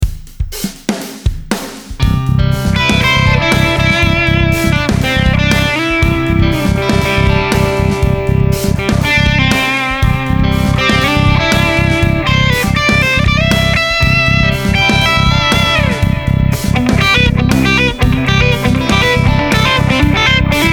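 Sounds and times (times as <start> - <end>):
three-string guitar solo: 2.0 - 20.7.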